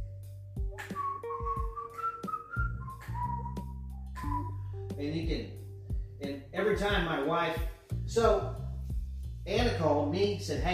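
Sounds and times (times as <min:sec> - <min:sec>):
person whistling a short tune: 0:00.0 - 0:05.0
speech: 0:05.0 - 0:05.6, 0:06.2 - 0:08.6, 0:09.5 - 0:10.7.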